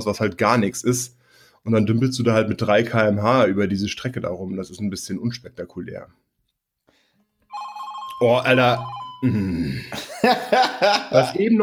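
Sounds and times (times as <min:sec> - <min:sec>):
speech: 0:00.0 - 0:06.2, 0:08.2 - 0:11.6
mobile phone ringing with a bright electronic ringtone: 0:07.5 - 0:09.4
laughter: 0:09.2 - 0:11.5.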